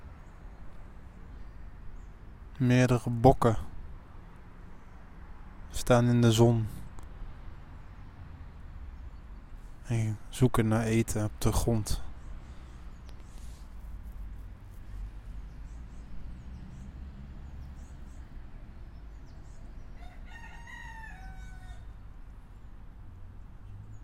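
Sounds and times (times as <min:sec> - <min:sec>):
speech: 0:02.6 - 0:03.7, 0:05.9 - 0:06.8, 0:09.9 - 0:12.0
rooster crowing: 0:19.9 - 0:22.0.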